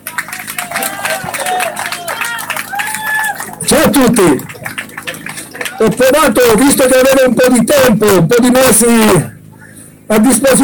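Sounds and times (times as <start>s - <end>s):
scattered cheers: 0.0s - 6.0s
crowd applauding: 0.0s - 6.7s
speech: 4.0s - 4.8s, 5.8s - 9.3s, 10.1s - 10.6s.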